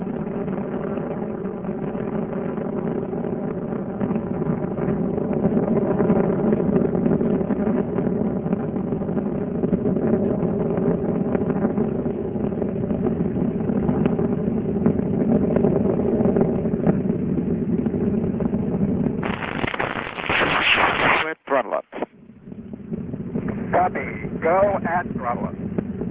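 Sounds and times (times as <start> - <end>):
crackling bursts: 0.0 - 26.0
space shuttle main engines roaring during ascent: 0.0 - 26.0.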